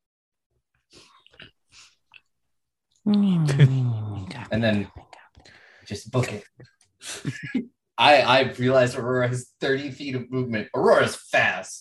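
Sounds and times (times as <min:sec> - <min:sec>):
human voice imitating a horrible mole rat dog creature with a harsh buzzing growl: 0:03.1 - 0:04.6
speech: 0:03.1 - 0:05.0, 0:05.9 - 0:11.7
breaths: 0:05.4 - 0:05.9.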